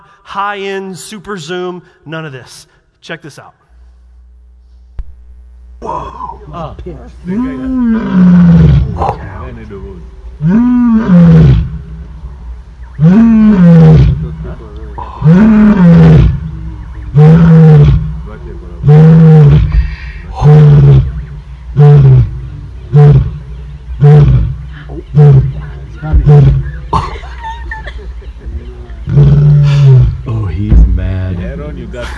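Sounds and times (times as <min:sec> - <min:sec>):
speech: 0:00.3 - 0:03.6, 0:05.8 - 0:11.4
lion roaring: 0:07.3 - 0:09.5, 0:10.4 - 0:11.9, 0:13.0 - 0:18.2, 0:18.8 - 0:27.0, 0:28.9 - 0:30.4
laughter: 0:26.7 - 0:29.0.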